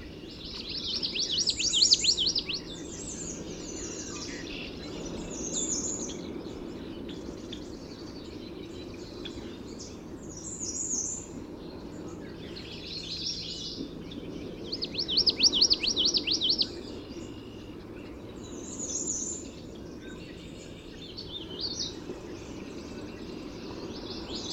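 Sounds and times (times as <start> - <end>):
common yellowthroat singing: 0.0 - 24.5
common yellowthroat chips and twitters: 14.8 - 16.7.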